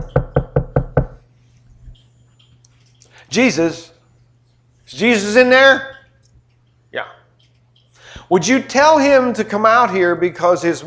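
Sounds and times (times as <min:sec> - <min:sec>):
knocking on the wooden door of a house: 0:00.0 - 0:01.2
speech: 0:03.3 - 0:03.9, 0:04.9 - 0:05.9, 0:06.9 - 0:07.2, 0:08.3 - 0:10.8.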